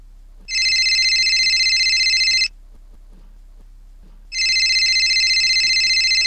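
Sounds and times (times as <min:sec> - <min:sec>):
faint noise: 0:00.0 - 0:06.2
telephone ringing in bright electronic bursts: 0:00.5 - 0:02.5, 0:04.4 - 0:06.2.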